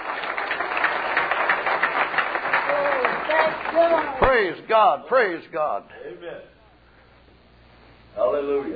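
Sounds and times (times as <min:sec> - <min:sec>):
audience clapping: 0:00.0 - 0:04.7
speech: 0:03.4 - 0:06.6, 0:08.2 - 0:08.7.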